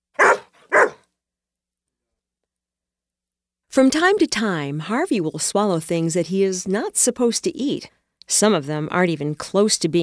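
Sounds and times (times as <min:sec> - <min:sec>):
dog barking: 0:00.2 - 0:01.0
speech: 0:03.7 - 0:10.0.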